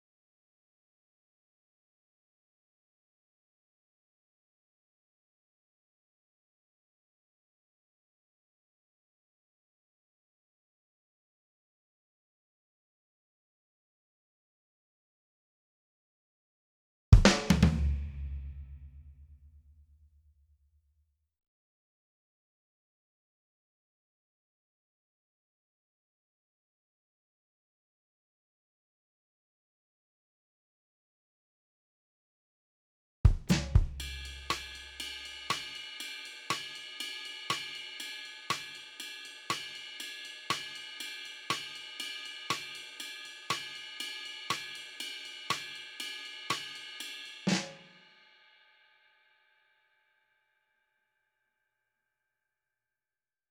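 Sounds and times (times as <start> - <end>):
Motown-style drum kit: 17.2 - 19.0, 33.3 - 47.9.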